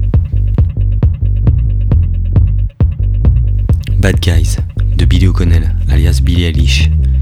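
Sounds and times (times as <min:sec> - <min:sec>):
steady kick drum thumping: 0:00.0 - 0:05.2
loud deep bass line: 0:00.0 - 0:07.1
speech: 0:04.0 - 0:07.0.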